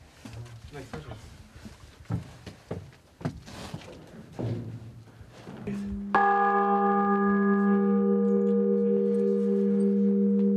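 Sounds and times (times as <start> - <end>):
small church bells ringing: 5.9 - 10.5.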